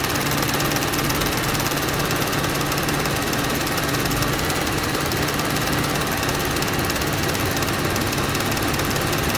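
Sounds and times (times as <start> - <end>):
projector: 0.0 - 9.3.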